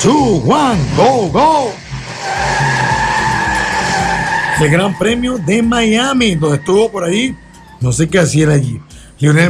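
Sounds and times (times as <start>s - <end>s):
speech: 0.0s - 2.5s, 4.6s - 9.4s
Formula 1 race car tire squeal while skidding: 0.0s - 8.3s
Formula 1 race car low engine rumble: 0.0s - 9.2s.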